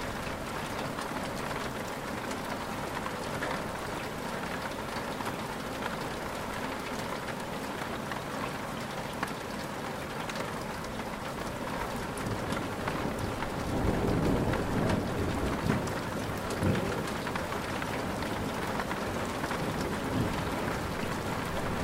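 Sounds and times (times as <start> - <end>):
rain falling on an ancient house's rooftop: 0.0 - 21.8
thunder rumble: 12.3 - 21.8.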